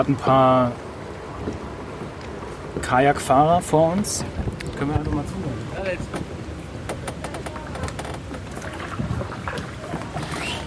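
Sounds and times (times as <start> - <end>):
speech: 0.0 - 1.7, 2.8 - 6.3
slight wind buffeting: 0.0 - 10.6
water rushing from a canal lock: 0.0 - 10.6.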